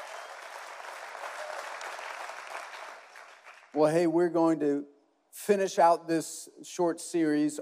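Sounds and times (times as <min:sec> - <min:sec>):
audience applause: 0:00.0 - 0:03.8
speech: 0:03.8 - 0:07.6.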